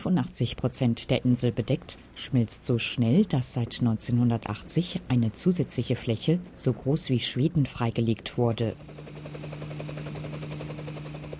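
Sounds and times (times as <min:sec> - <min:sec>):
speech: 0:00.0 - 0:09.5
helicopter flying over the Greenland ice sheet: 0:07.7 - 0:11.3.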